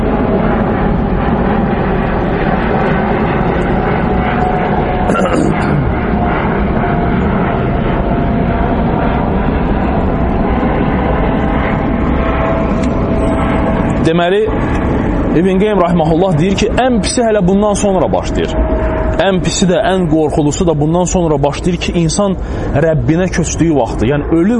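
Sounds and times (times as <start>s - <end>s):
airplane passing overhead: 0.0s - 24.5s
speech: 14.1s - 14.8s, 15.4s - 24.5s.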